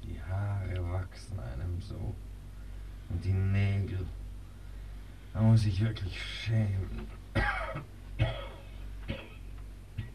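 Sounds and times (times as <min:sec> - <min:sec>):
speech: 0:00.3 - 0:02.3, 0:03.1 - 0:04.2, 0:05.3 - 0:08.4
short harsh coughs: 0:07.3 - 0:10.1.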